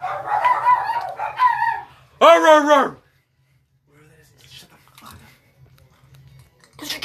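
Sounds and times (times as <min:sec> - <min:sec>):
dog barking: 0:00.0 - 0:01.9.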